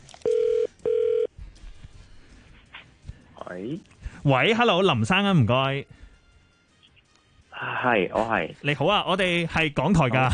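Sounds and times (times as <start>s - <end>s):
telephone ringing on a called line: 0.2s - 1.3s
speech: 3.5s - 6.0s, 7.8s - 10.3s.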